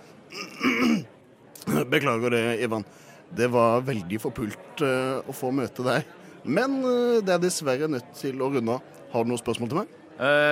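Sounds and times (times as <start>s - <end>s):
gruff throat clearing: 0.3s - 1.9s
speech: 1.9s - 10.4s.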